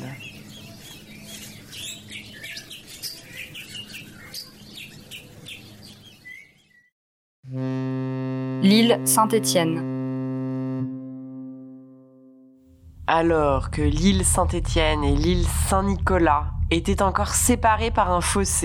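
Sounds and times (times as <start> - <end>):
tropical birds, parrots and cockatoos, chirping and squawking: 0.0 - 6.9
loud steady droning tone: 7.5 - 18.6
speech: 8.6 - 9.9, 13.1 - 18.6.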